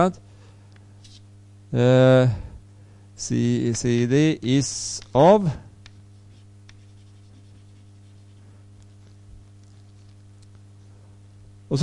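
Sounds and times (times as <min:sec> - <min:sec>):
speech: 0:00.0 - 0:00.3, 0:01.7 - 0:02.5, 0:03.2 - 0:05.7
steady low electrical hum: 0:00.0 - 0:11.8
marker or chalk writing on a board: 0:05.9 - 0:09.1.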